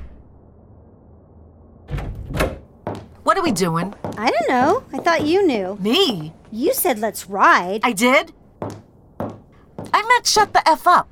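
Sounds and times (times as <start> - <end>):
low quiet rumble: 0.0 - 2.8
front door slamming shut: 1.9 - 2.7
speech: 3.4 - 8.4, 10.2 - 11.0.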